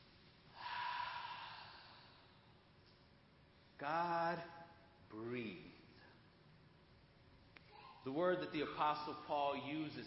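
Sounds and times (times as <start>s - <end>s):
deep breath drawn in: 0.5s - 2.5s
speech: 3.8s - 5.8s, 8.0s - 10.0s.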